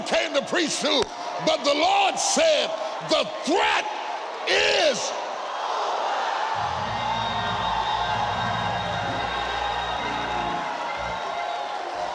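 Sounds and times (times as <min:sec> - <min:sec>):
speech: 0:00.0 - 0:05.2
large indoor church crowd shouting and cheering with whoops: 0:00.0 - 0:12.1
steady low rumble of organ or bass notes: 0:06.6 - 0:11.7.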